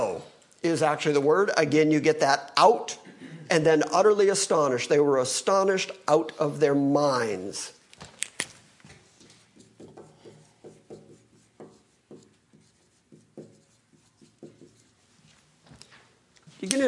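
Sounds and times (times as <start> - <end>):
speech: 0.6 - 7.8
words being written up on a board: 9.0 - 15.4.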